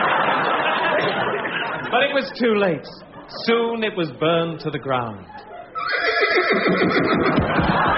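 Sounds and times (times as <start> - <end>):
laughter: 0.0 - 3.3, 7.0 - 7.9
speech: 1.9 - 5.5, 6.4 - 7.9
horse neighing: 5.8 - 7.4.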